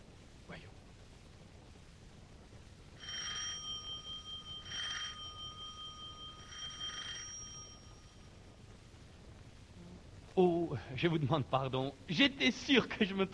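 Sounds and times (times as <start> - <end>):
steady low hiss: 0.0 - 13.3
doorbell ringing at a door under a carriage entrance: 3.0 - 8.3
speech: 10.4 - 13.3.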